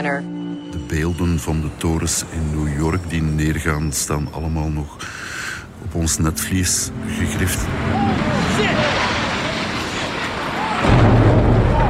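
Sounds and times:
speech: 0:00.0 - 0:09.2
huge explosion: 0:07.6 - 0:11.8
falling debris: 0:08.2 - 0:11.8.

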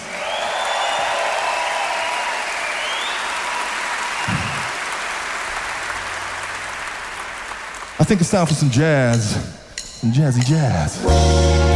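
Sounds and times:
audience cheers and whistles: 0:00.0 - 0:04.8
large audience applauding: 0:00.0 - 0:08.9
speech: 0:08.1 - 0:11.6.

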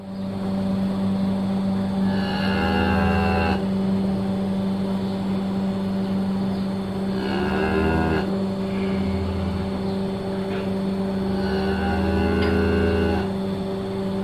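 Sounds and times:
droning machinery hum: 0:00.0 - 0:14.2
cow mooing: 0:02.0 - 0:03.7, 0:07.1 - 0:10.0, 0:11.1 - 0:13.4.

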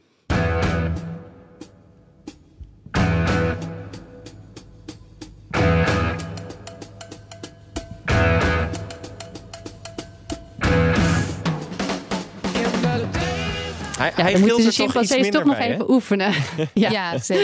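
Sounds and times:
rock drummer playing a full drum kit: 0:00.3 - 0:15.6
heavy crash cymbal accents: 0:03.0 - 0:14.2
quick fills of snare and tom hits: 0:08.7 - 0:13.3
laughter: 0:13.9 - 0:17.4
speech: 0:14.1 - 0:17.4.

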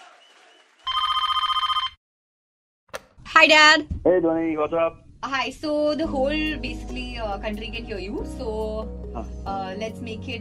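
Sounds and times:
phone ringing as a call is placed: 0:00.9 - 0:02.0
speech: 0:03.4 - 0:10.3.

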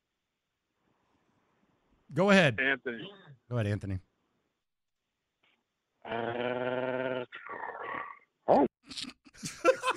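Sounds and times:
speech: 0:02.1 - 0:04.1, 0:06.0 - 0:07.6
person imitating a dog growling, howling and barking: 0:06.0 - 0:09.0
laughter: 0:09.4 - 0:09.9.

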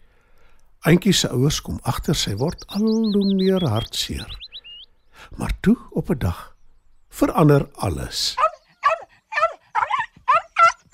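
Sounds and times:
speech: 0:00.8 - 0:04.5, 0:05.3 - 0:06.5, 0:07.2 - 0:08.4
small puppy yapping in a kitchen: 0:08.4 - 0:10.9.

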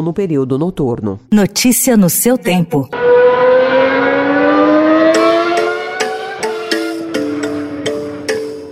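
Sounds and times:
speech: 0:00.0 - 0:03.1
stock car racing engine revving at a stock car race in Cascavel Brazil: 0:02.9 - 0:08.7.

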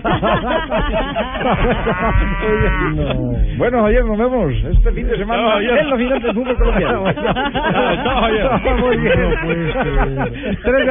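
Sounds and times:
laughter: 0:00.0 - 0:03.7, 0:04.5 - 0:10.8
speech: 0:00.0 - 0:10.8
cows mooing: 0:01.4 - 0:03.5, 0:08.0 - 0:10.6.

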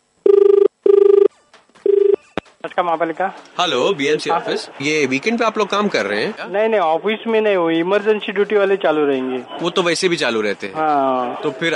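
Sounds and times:
telephone ringback tone as a call is placed to a municipal office: 0:00.2 - 0:02.4
speech: 0:02.8 - 0:11.7.

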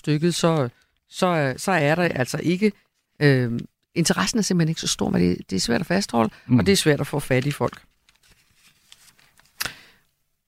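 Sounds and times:
speech: 0:00.0 - 0:07.9
newspaper pages rustling and turning: 0:07.2 - 0:09.7.

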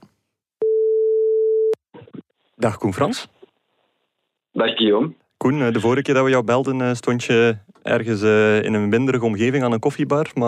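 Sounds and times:
telephone call tone: 0:00.6 - 0:01.8
speech: 0:02.6 - 0:03.4, 0:04.6 - 0:10.4.

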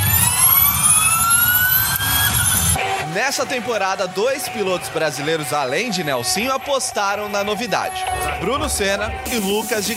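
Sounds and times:
battery-powered Formula E electric race car whine accelerating past: 0:00.0 - 0:02.9
speech: 0:03.2 - 0:09.9.

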